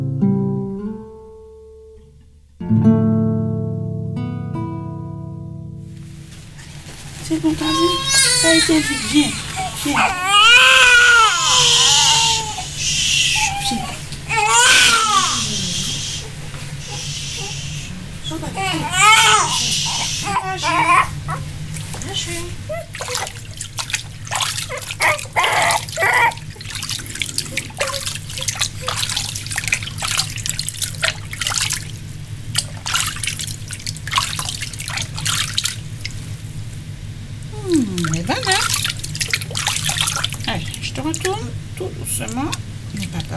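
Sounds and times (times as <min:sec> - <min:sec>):
low steady hum: 0:00.0 - 0:43.3
water trickling and dripping in a bathtub: 0:06.6 - 0:16.0, 0:18.3 - 0:36.6, 0:37.4 - 0:43.3
speech: 0:07.4 - 0:10.2.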